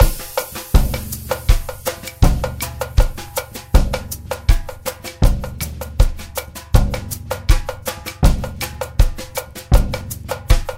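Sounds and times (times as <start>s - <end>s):
2000s drum loop in A sharp key: 0.0s - 10.7s.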